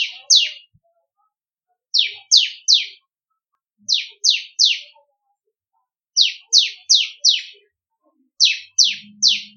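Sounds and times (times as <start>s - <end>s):
bar-winged prinia song of high chips: 0.0s - 3.1s, 3.8s - 9.5s.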